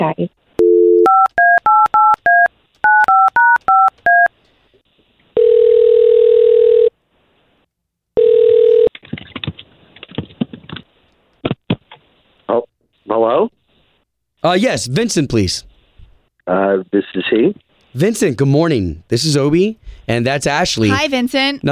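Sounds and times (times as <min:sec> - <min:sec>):
speech: 0:00.0 - 0:00.4, 0:14.4 - 0:15.7, 0:16.5 - 0:21.7
long steady telephone ringback tones: 0:00.6 - 0:04.3, 0:05.4 - 0:06.9, 0:08.2 - 0:08.9
touch-tone keypad beeps dialling a phone number: 0:00.6 - 0:04.3
clicks and rustles as the phone line connects: 0:08.9 - 0:12.1.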